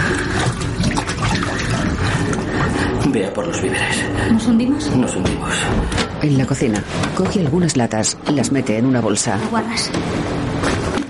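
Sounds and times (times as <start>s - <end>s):
water rushing in through a hole in a ship's hull: 0.0s - 3.1s
speech: 3.2s - 11.0s.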